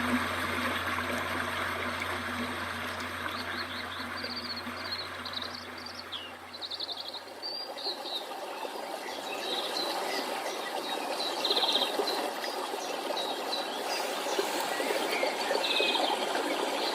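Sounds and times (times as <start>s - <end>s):
low hum: 0.0s - 7.3s
small stream trickling and burbling: 0.0s - 16.9s.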